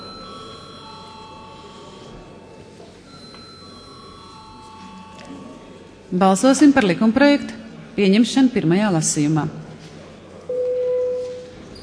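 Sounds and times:
parliamentary voting bell ringing: 0:00.0 - 0:02.5, 0:03.1 - 0:05.8
low murmur of room noise and faint voices: 0:00.0 - 0:10.6
speech: 0:06.1 - 0:09.6.

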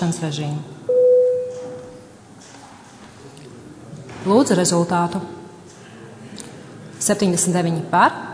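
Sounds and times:
speech: 0:00.0 - 0:00.8, 0:04.2 - 0:05.4, 0:07.0 - 0:08.3
parliament voting electronic bell tone: 0:00.9 - 0:01.8.

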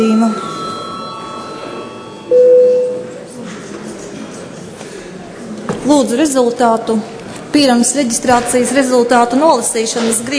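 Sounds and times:
speech: 0:00.0 - 0:00.5, 0:05.9 - 0:10.3
electronic bell tone before a break in a parliamentary session: 0:00.0 - 0:03.3
quiet murmur: 0:00.0 - 0:10.3.

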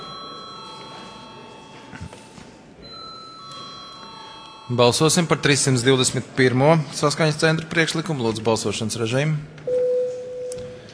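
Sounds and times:
parliament voting bell ringing: 0:00.0 - 0:01.9, 0:02.8 - 0:05.7
hushed murmuring parliament chamber: 0:00.0 - 0:09.6
speech: 0:04.7 - 0:09.7.

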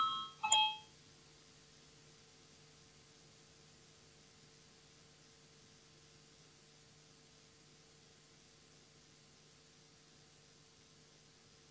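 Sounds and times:
parliamentary electronic voting bell chime: 0:00.0 - 0:00.9.

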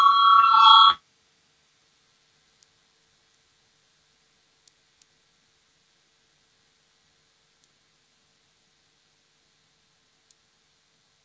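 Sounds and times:
parliament voting call electric bell ringing: 0:00.0 - 0:01.0.

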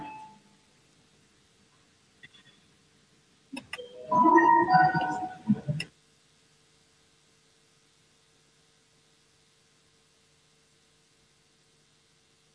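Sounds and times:
electronic voting bell chime in a parliament: 0:03.8 - 0:05.4.

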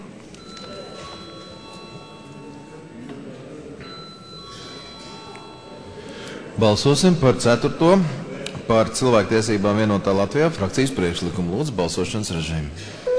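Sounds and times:
low murmur of voices: 0:00.0 - 0:13.1
electric bell ringing in parliament chamber to call a vote: 0:00.4 - 0:03.1, 0:03.8 - 0:08.1
speech: 0:06.6 - 0:13.1.

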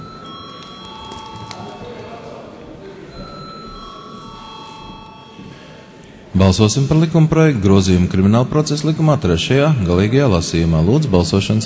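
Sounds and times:
parliament voting call bell ringing in a parliament chamber: 0:00.0 - 0:02.0, 0:03.2 - 0:05.8
murmur of room noise and voices: 0:00.0 - 0:11.6
speech: 0:06.4 - 0:11.6.

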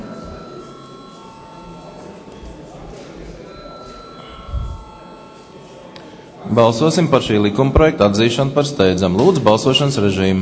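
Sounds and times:
voting call bell ringing in the Latvian parliament: 0:00.0 - 0:02.8, 0:03.4 - 0:05.9
faint murmuring of deputies: 0:00.0 - 0:10.4
speech: 0:06.5 - 0:10.4.

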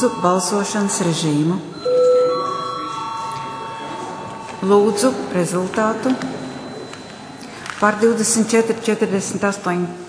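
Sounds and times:
speech: 0:00.0 - 0:01.9, 0:04.6 - 0:06.4, 0:07.8 - 0:10.0
electronic bell ringing in a parliament chamber before a vote: 0:00.0 - 0:08.4.

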